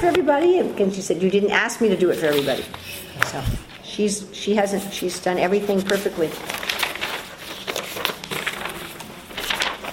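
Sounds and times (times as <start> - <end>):
speech: 0.0 - 6.7
one-page paper reference handout rustling: 1.8 - 3.8, 4.6 - 9.9.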